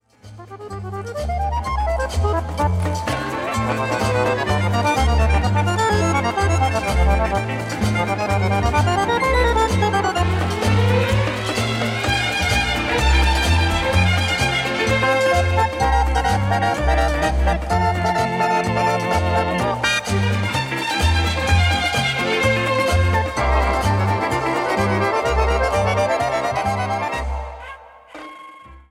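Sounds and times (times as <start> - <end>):
harmonica playing samba: 0.2 - 28.8.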